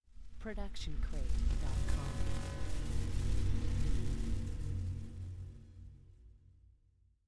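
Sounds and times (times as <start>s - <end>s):
sci-fi swarm sound: 1.0s - 6.0s.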